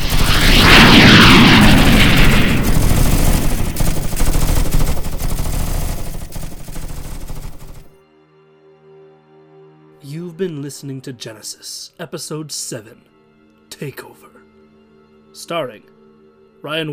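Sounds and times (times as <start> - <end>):
sustained gunfire from weapons fired at will: 0.0 - 7.9
speech: 10.4 - 13.1, 13.7 - 14.4, 15.4 - 15.9, 16.6 - 16.9.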